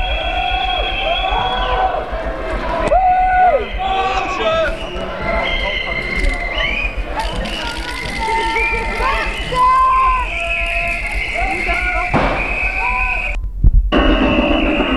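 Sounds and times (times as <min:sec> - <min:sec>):
large protest march crowd voices outdoors in a city: 0:00.0 - 0:13.4, 0:14.0 - 0:14.9
protesters shouting: 0:00.0 - 0:13.4
whistles at a protest march: 0:00.0 - 0:13.4, 0:14.0 - 0:14.9.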